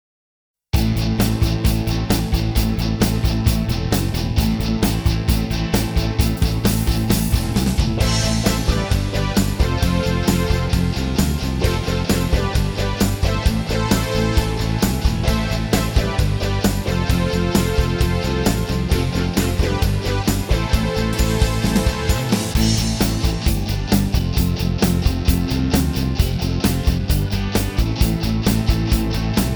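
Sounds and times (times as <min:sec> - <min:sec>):
rock guitar: 0:00.8 - 0:29.5.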